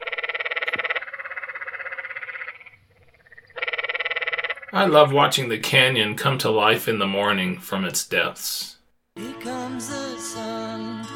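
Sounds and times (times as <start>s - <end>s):
canyon tree frogs calling at night in buzzing trills: 0.0s - 4.8s
speech: 4.7s - 8.8s.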